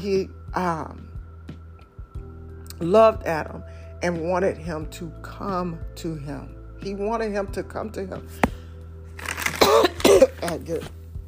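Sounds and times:
speech: 0:00.0 - 0:01.1, 0:02.8 - 0:08.5, 0:10.4 - 0:11.0
person coughing: 0:09.5 - 0:10.5
person clearing throat: 0:09.6 - 0:10.5.

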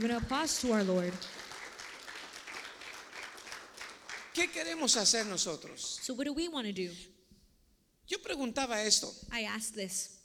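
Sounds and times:
speech: 0:00.0 - 0:01.4, 0:04.4 - 0:07.2, 0:08.1 - 0:10.2
audience applauding: 0:00.4 - 0:06.0.

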